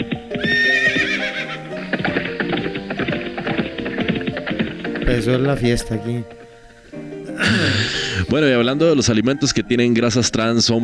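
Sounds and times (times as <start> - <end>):
clopping hoofbeats: 0.0 - 6.5
horse whinnying with a high wavering pitch: 0.3 - 3.2
speech: 5.1 - 6.4, 7.4 - 10.8.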